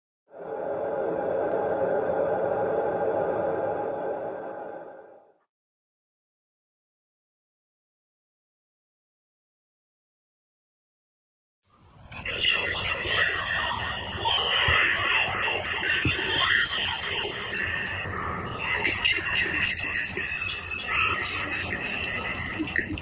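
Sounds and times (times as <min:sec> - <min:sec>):
eerie horror whispers: 0:00.3 - 0:05.4, 0:12.1 - 0:22.9.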